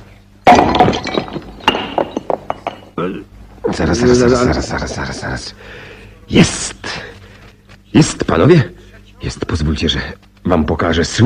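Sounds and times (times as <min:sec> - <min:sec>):
plaster bust smashing: 0:00.4 - 0:02.8
plaster fragments clattering: 0:00.4 - 0:03.0
speech: 0:03.0 - 0:06.8, 0:07.9 - 0:11.2.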